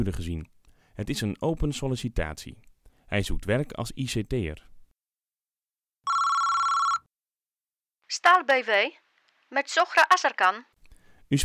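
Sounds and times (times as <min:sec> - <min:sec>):
speech: 0:00.0 - 0:04.7, 0:08.1 - 0:10.7, 0:11.3 - 0:11.4
telephone ringing: 0:06.0 - 0:07.1.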